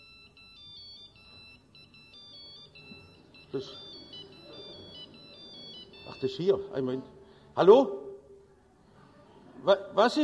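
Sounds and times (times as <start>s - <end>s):
phone ringtone beeping in high electronic tones during a confirmation church service: 0.0s - 6.8s
speech: 3.5s - 3.9s, 6.2s - 8.0s, 9.6s - 10.2s.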